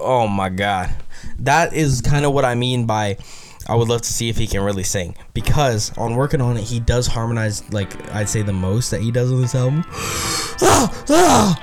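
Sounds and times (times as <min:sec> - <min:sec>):
speech: 0:00.0 - 0:11.6
loud breathy yawn with voiced groan: 0:10.0 - 0:11.6.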